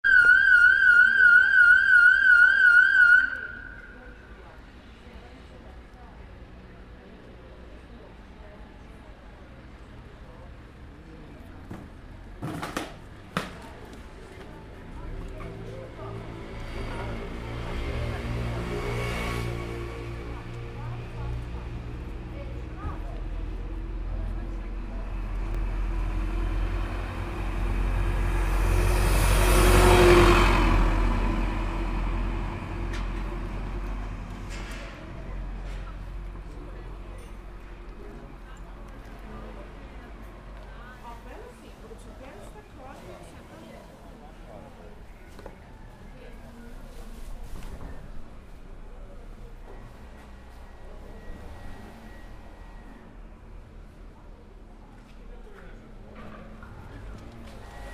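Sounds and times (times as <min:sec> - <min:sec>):
siren in a town square: 0:00.0 - 0:04.2
traffic in a town square: 0:00.0 - 0:57.9.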